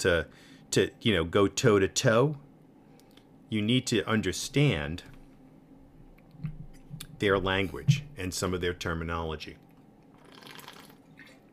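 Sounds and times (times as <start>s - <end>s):
speech: 0.0s - 2.4s, 3.5s - 5.1s, 7.2s - 9.6s
wet liquid noise of water sipped or sloshing in a cup: 10.1s - 11.5s.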